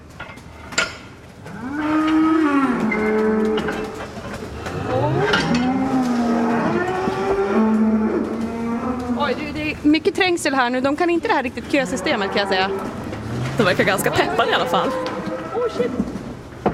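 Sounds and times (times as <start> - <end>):
herd of dairy cows mooing as they are let out to pasture: 1.4 - 9.8, 11.6 - 16.2
speech: 10.2 - 13.0, 13.6 - 15.1, 15.8 - 16.1.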